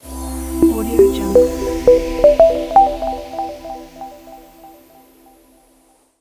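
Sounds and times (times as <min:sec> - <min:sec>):
synthesizer logo ident: 0:00.4 - 0:05.0.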